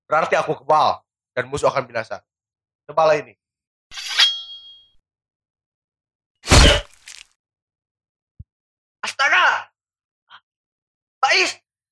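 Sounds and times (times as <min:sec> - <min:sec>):
speech: 0:00.1 - 0:02.3, 0:02.9 - 0:04.0
sharp metallic clang: 0:03.9 - 0:04.9, 0:06.5 - 0:06.9
heavy broadband slash or crash: 0:06.4 - 0:07.2.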